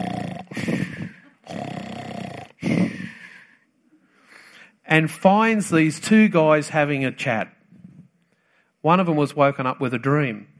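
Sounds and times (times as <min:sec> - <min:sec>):
voice imitating men snoring in a camp: 0:00.0 - 0:03.3
speech: 0:04.9 - 0:07.6, 0:08.8 - 0:10.5.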